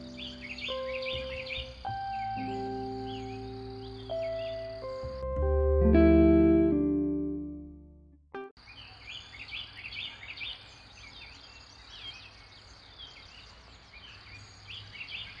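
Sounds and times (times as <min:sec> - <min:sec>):
small birds chirping in the early morning in Tennessee: 0:00.0 - 0:05.3, 0:08.6 - 0:15.3
sustained humming musical tones: 0:00.0 - 0:08.5.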